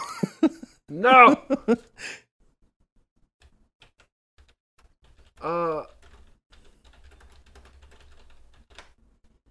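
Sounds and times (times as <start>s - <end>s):
laughter: 0.0s - 1.9s
person sighing: 0.9s - 2.2s, 5.4s - 6.0s
speech: 0.9s - 2.2s
typing on a computer keyboard: 3.4s - 9.0s.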